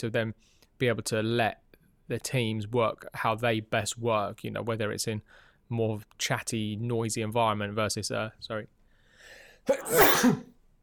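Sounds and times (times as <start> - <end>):
speech: 0.0 - 10.5
single loud sneeze: 9.7 - 10.6.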